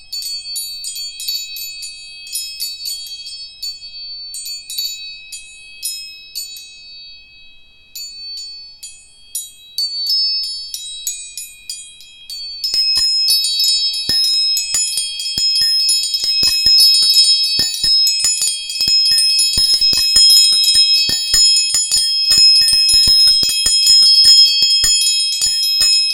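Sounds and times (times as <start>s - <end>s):
417 Hz tuning forks ringing: 11.8s - 26.1s
faint tapping clicks: 12.8s - 26.1s.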